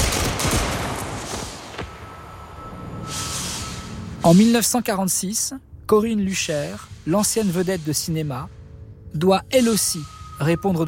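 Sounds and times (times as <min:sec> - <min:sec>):
firing squad volley of gunshots at an execution: 0:00.0 - 0:01.9
speech: 0:04.2 - 0:10.8.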